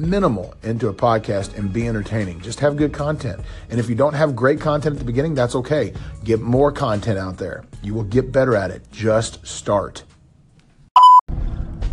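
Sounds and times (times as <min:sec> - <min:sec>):
speech: 0:00.0 - 0:10.1
car seatbelt reminder electronic beep: 0:11.0 - 0:11.2.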